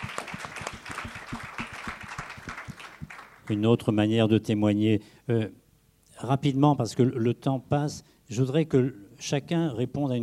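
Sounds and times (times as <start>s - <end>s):
audience applauding: 0.0s - 3.6s
speech: 3.5s - 5.6s, 6.2s - 10.2s.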